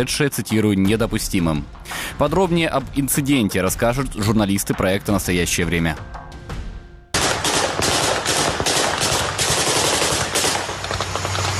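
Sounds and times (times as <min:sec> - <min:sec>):
speech: 0:00.0 - 0:06.2
rapid gunfire bursts during military exercises outdoors: 0:07.2 - 0:11.5.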